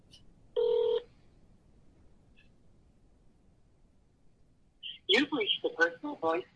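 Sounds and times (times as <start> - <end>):
phone keypad dialing tone calling a cell phone: 0.6 - 1.1
speech: 5.2 - 6.5.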